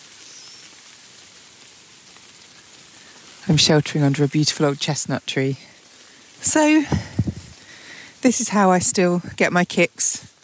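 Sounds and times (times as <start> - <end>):
heavy rain falling on leaves: 0.0 - 10.4
speech: 3.5 - 5.7, 6.4 - 7.1, 8.2 - 10.3.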